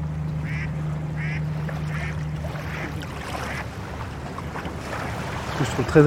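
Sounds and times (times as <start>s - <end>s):
lapping waves: 0.0s - 6.0s
sand barge low engine drone: 0.0s - 6.0s
duck-like calls: 0.4s - 2.9s
speech: 5.6s - 6.0s.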